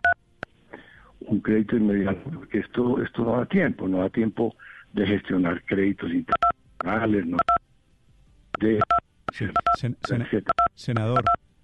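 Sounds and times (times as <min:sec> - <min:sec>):
speech: 0:01.3 - 0:07.6, 0:08.6 - 0:11.4
mobile phone keypad DTMF button tones: 0:07.4 - 0:07.6, 0:08.8 - 0:11.6.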